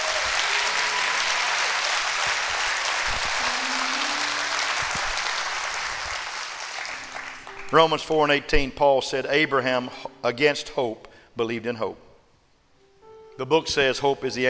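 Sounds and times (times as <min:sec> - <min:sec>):
audience clapping hands above their heads: 0:00.0 - 0:07.9
speech: 0:07.7 - 0:12.1, 0:13.4 - 0:14.4.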